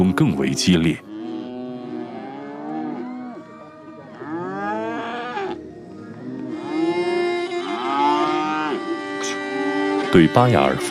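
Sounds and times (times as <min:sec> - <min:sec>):
speech: 0:00.1 - 0:01.1, 0:10.2 - 0:10.8
calves mooing at a livestock competition: 0:01.0 - 0:10.8.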